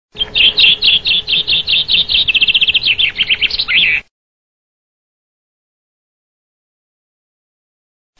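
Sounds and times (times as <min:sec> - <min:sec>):
fringuello bird sound: 0:00.1 - 0:04.1.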